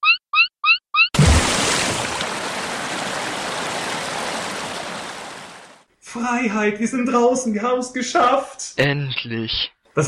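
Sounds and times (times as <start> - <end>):
water rushing from a turned-on tap: 1.2 - 5.7
speech: 6.1 - 10.0.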